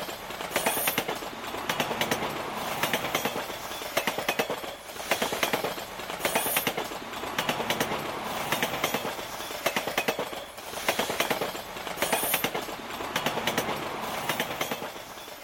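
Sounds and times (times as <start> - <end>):
metallic rattling in gangway between moving train carriages: 0.0 - 15.4.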